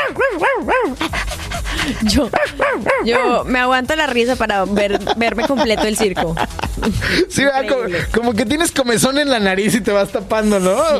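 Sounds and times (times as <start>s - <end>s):
small dog yipping and barking: 0.0s - 1.0s, 2.3s - 3.4s
laughter: 1.8s - 2.7s, 4.6s - 7.8s
speech: 1.9s - 10.9s.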